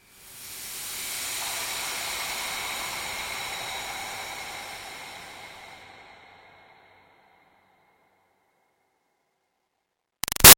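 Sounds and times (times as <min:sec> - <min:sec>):
airy steam release swell: 0:00.0 - 0:06.8.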